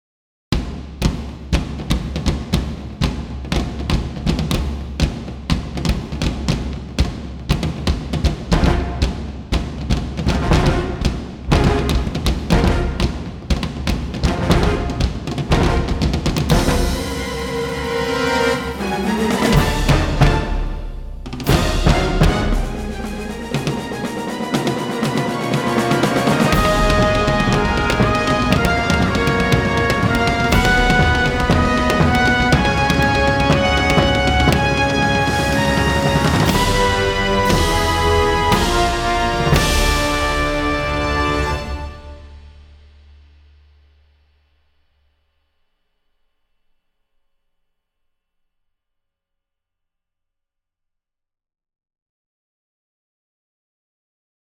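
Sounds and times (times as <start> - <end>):
power tom drums: 0.5 - 44.1.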